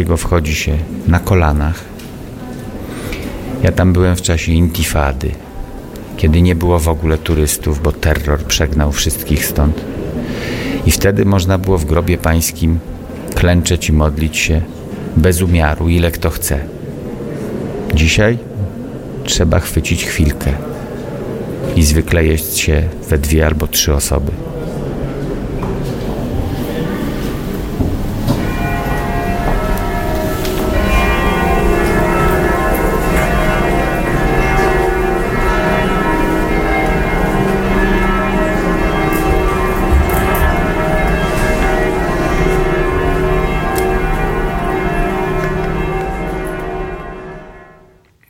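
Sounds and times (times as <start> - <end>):
speech: 0.0 - 1.9, 3.6 - 5.4, 6.2 - 16.8, 18.0 - 18.5, 19.2 - 20.7, 21.8 - 24.6
faint activity: 0.0 - 47.2
church bells pealing: 0.0 - 48.0.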